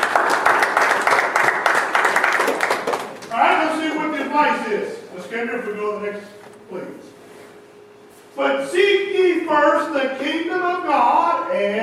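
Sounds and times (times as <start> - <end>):
audience applause: 0.0 - 3.3
speech: 4.4 - 7.2, 8.4 - 11.8.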